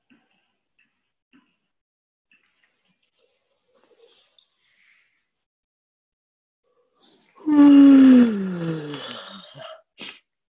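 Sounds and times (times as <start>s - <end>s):
quick short breath: 7.4s - 9.4s
loud drawn-out yawn while stretching: 7.4s - 9.8s.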